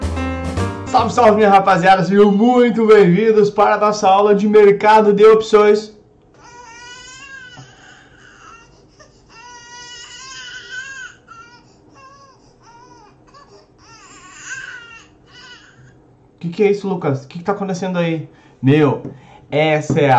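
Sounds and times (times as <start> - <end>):
speech: 0.9 - 5.9, 16.4 - 20.1
child crying: 6.4 - 15.9.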